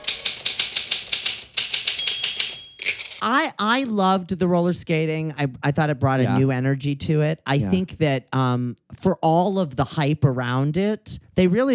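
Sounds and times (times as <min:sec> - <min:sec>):
typewriter keys clacking: 0:00.0 - 0:03.2
speech: 0:03.2 - 0:11.7.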